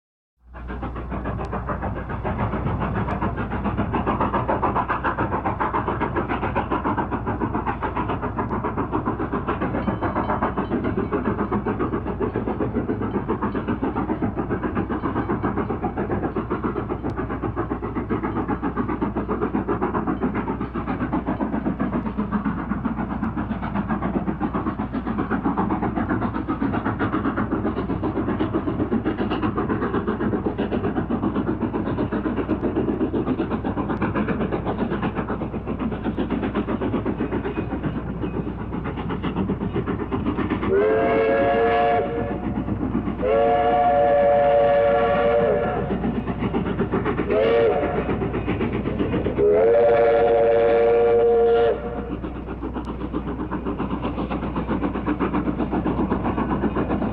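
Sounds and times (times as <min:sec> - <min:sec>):
Rio Grande Western steam locomotive at a station: 0:00.4 - 0:57.1.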